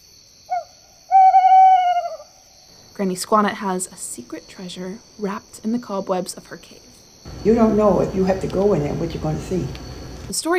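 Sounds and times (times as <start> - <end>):
owl hooting: 0.5 - 2.5
speech: 3.0 - 10.5.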